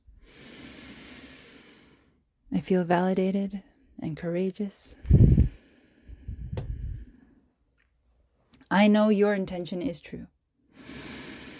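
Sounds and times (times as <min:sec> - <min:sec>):
slow drawn-out soft airy breath: 0:00.1 - 0:02.3, 0:04.9 - 0:07.6, 0:10.7 - 0:11.5
speech: 0:02.5 - 0:05.2, 0:08.7 - 0:10.4.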